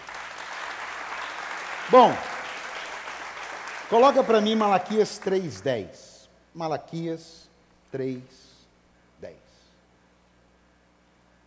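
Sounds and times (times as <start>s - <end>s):
crowd clapping: 0.0s - 5.7s
speech: 1.9s - 2.3s, 3.9s - 8.5s, 9.2s - 9.4s.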